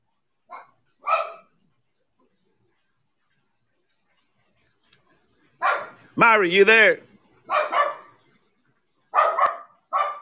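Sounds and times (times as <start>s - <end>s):
dog barking: 0.5s - 1.6s, 5.6s - 6.0s, 7.5s - 8.2s, 9.1s - 10.1s
faint click: 4.9s - 5.1s
speech: 6.2s - 7.7s.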